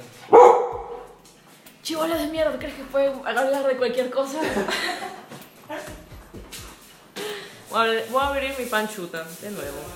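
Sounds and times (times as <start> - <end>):
dog barking: 0.3 - 1.1
speech: 1.9 - 5.0, 7.8 - 9.9
laughter: 4.4 - 6.0.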